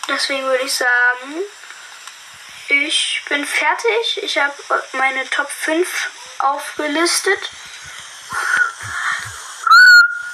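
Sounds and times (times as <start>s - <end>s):
speech: 0.1s - 1.7s, 2.7s - 7.6s
breathy airy blowing attempts: 7.6s - 10.3s
person whistling a short clear note: 9.6s - 10.3s.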